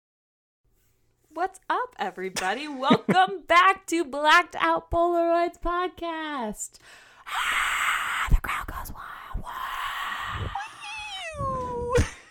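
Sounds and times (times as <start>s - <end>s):
speech: 1.4s - 8.0s
person imitating a yowling feral cat: 9.6s - 12.0s.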